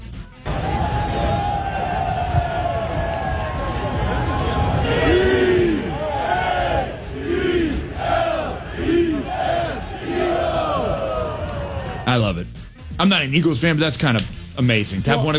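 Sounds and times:
large crowd roaring at a golf tournament: 0:00.4 - 0:12.2
speech: 0:12.2 - 0:15.3.

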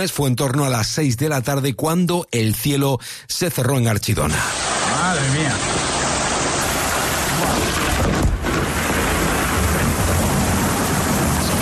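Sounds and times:
speech: 0:00.0 - 0:06.1
heavy rain during a thunderstorm: 0:04.4 - 0:11.6.

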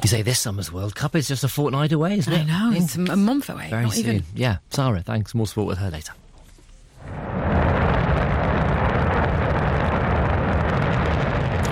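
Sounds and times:
speech: 0:00.0 - 0:06.2
Shenzhou 23 rocket blasting off at the Jingquan Launch Center: 0:07.0 - 0:11.7.

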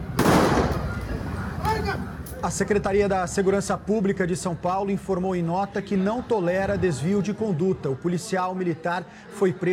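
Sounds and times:
loud point-blank gunshot by a military police soldier in São Paulo, Brazil: 0:00.2 - 0:01.0
speech: 0:02.4 - 0:09.7.

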